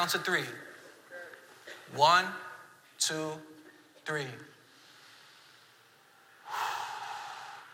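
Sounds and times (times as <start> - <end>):
speech: 0.0 - 0.7, 1.9 - 4.5
slow breath drawn in through the nose and out through the mouth: 4.6 - 7.7.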